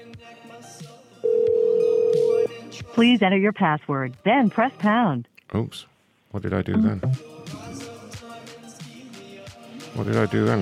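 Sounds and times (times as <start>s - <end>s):
telephone ringing down the line on an outgoing call: 1.2s - 2.5s
speech: 3.0s - 7.4s, 10.0s - 10.6s.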